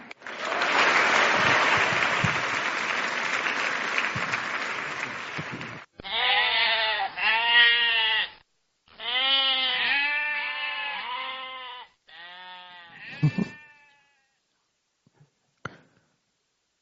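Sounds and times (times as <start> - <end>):
applause: 0.0 - 5.9
goats bleating: 6.0 - 14.2.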